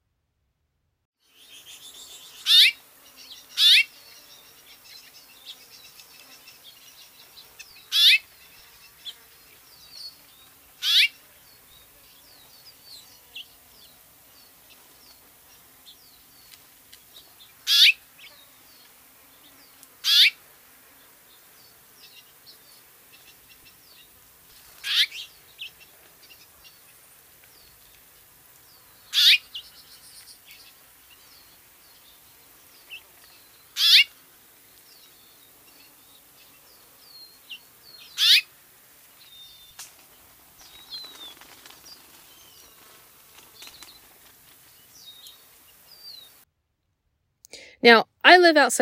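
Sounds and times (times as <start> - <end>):
house finch calls: 7.9 - 8.2, 10.8 - 11.2, 17.7 - 18.0, 20.0 - 20.4, 24.8 - 25.7, 29.1 - 29.6, 33.8 - 34.1, 38.1 - 38.5
speech: 47.8 - 48.7.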